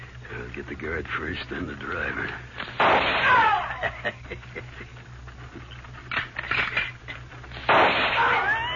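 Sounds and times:
speech: 0.6 - 5.8
volley of sharp gunshots along a wagon trail: 2.6 - 3.6, 7.6 - 8.6
laughter: 3.3 - 5.1.

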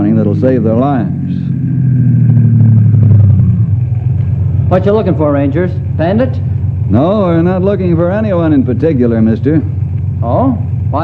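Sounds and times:
car engine rumble approaching along a road: 0.0 - 11.0
speech: 0.2 - 1.5, 4.7 - 11.0.

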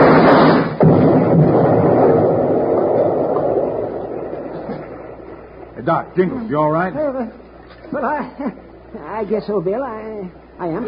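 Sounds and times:
lit fuse charge exploding among rocks: 0.0 - 5.8
speech: 5.9 - 10.8.

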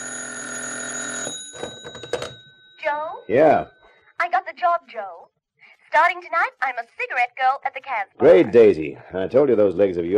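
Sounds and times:
old-fashioned telephone bell ringing in an office: 0.0 - 3.9
speech: 2.9 - 5.3, 5.9 - 10.1.

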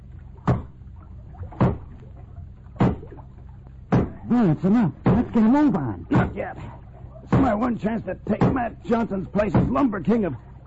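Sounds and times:
low steady rumble: 0.0 - 10.6
axe chopping into floating logs at a log jam from a boat: 0.5 - 0.8, 1.5 - 1.9, 2.8 - 3.2, 3.9 - 4.4, 5.1 - 5.4, 6.1 - 6.4, 7.3 - 7.7, 8.4 - 8.7, 9.5 - 9.8
speech: 4.3 - 10.5.

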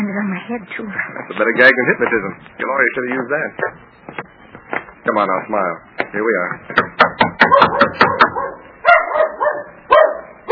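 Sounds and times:
speech: 0.2 - 4.2, 5.0 - 6.8
sharp knocks on a door: 6.7 - 8.4
dog barking loudly: 7.4 - 10.4.

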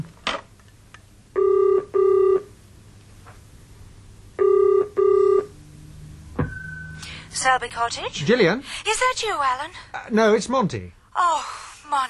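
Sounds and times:
telephone ringing in classic double-burst pattern: 1.4 - 2.5, 4.4 - 5.5
speech: 7.4 - 12.0.

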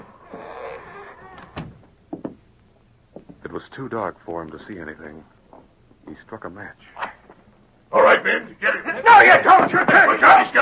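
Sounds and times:
door creaking open with a drawn-out squeal: 0.0 - 2.4
sharp knocks and thuds: 1.6 - 2.5
speech: 3.6 - 5.4, 6.1 - 7.0, 8.2 - 10.6.

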